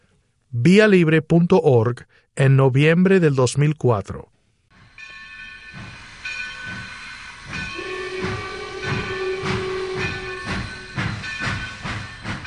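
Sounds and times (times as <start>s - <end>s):
speech: 0.5s - 4.4s
steam train chugging along the rails: 4.8s - 12.4s
long whistle-like tone: 7.6s - 11.1s.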